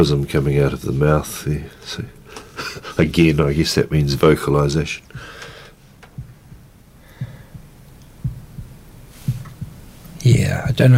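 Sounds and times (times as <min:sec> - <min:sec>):
speech: 0:00.0 - 0:05.4, 0:10.2 - 0:10.9
faint hum: 0:00.0 - 0:10.9
heartbeat in lub-dub pairs: 0:06.1 - 0:09.9.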